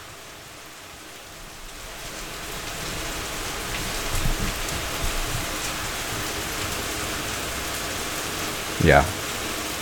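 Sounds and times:
heavy rain pouring outside a window: 0.0 - 9.8
speech: 8.8 - 9.2.

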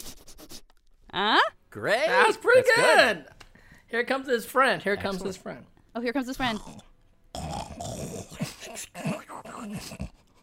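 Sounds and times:
speech: 1.2 - 6.9, 9.6 - 10.1
person imitating a snoring animal with the soft palate: 6.4 - 10.3.

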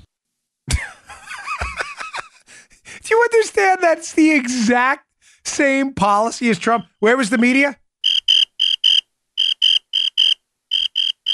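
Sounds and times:
laughter: 0.7 - 2.5
speech: 3.3 - 7.8
crickets chirping: 7.3 - 11.3.

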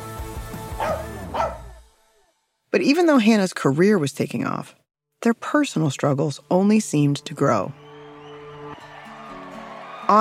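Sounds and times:
low music: 0.0 - 2.2
dog barking: 0.8 - 1.8
speech: 2.8 - 7.8.

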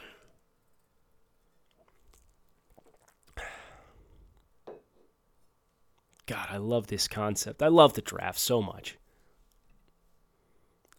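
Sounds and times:
person sipping and slurping a drink: 1.5 - 4.5
speech: 6.3 - 9.0.

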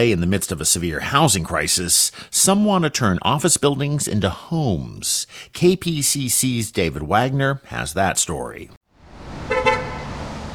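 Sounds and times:
speech: 0.0 - 8.8
city street traffic: 8.8 - 10.5
low rumble of passing cars: 8.9 - 10.5
car horn double toot on city street: 9.5 - 10.2.

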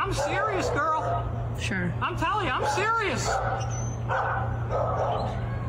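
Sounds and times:
dog barking: 0.1 - 1.3, 2.5 - 5.4
speech: 0.1 - 5.5.

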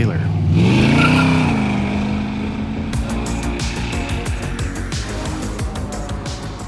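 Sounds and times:
car engine droning as it drives: 0.0 - 6.6
car tire squeal: 0.6 - 2.3.

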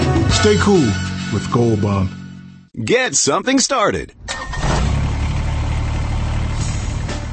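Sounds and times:
speech: 0.4 - 2.2, 2.8 - 4.2
Kubota BX subcompact tractor diesel engine cranking and idling: 4.3 - 7.3.

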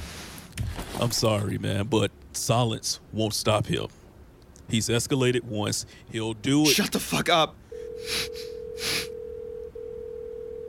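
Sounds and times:
speech: 1.0 - 4.0, 4.7 - 8.9
electronic ringback tone of an outgoing phone call: 7.7 - 10.6
person gasping sharply and breathily: 8.0 - 9.1.

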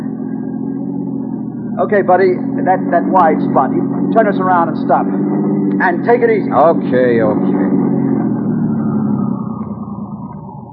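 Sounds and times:
car engine idling: 0.0 - 10.7
speech: 1.8 - 7.6.

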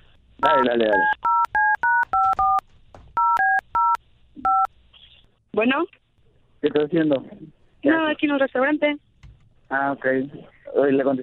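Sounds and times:
speech: 0.4 - 1.2, 5.6 - 6.0, 6.6 - 9.0, 9.7 - 11.2
telephone keypad tones as a number is dialed: 0.4 - 2.6, 3.2 - 4.7.

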